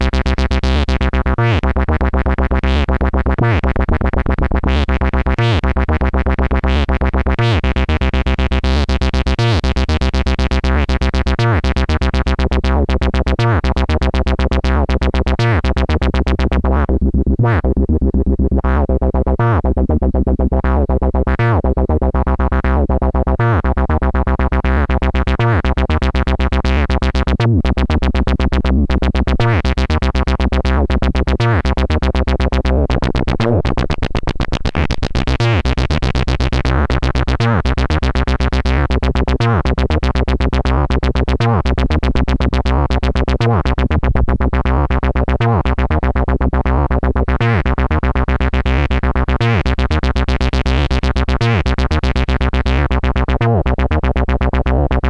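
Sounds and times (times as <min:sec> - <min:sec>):
dry mbsid synth bassline: 0:00.0 - 0:55.0.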